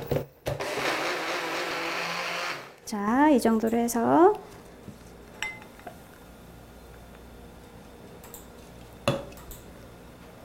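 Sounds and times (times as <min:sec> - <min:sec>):
blender grinding almonds and water into almond soy milk: 0:00.5 - 0:02.8
speech: 0:02.9 - 0:04.5.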